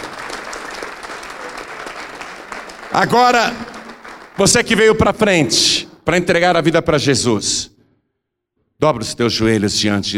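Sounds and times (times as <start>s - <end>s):
audience applauding: 0.0s - 5.4s
speech: 2.9s - 3.7s, 4.4s - 7.7s, 8.8s - 10.1s.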